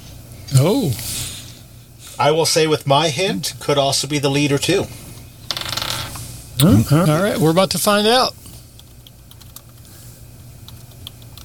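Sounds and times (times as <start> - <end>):
steady low hum: 0.0 - 11.4
speech: 0.5 - 1.2, 2.2 - 5.0, 6.6 - 8.4
typing on a computer keyboard: 8.8 - 9.9, 10.6 - 11.4.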